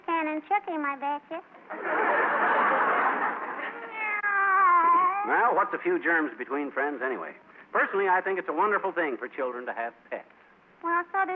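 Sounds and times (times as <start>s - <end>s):
speech: 0.4s - 2.9s, 5.2s - 11.3s
laughter: 1.6s - 4.2s
kitten meowing: 3.8s - 5.3s.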